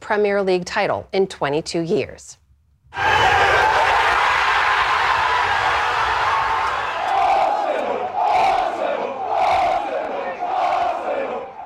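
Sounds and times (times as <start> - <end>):
speech: 0.1 - 3.3
dense crowd of football fans roaring outdoors: 2.9 - 11.6
regular shouted pulses from football fans: 3.0 - 11.6.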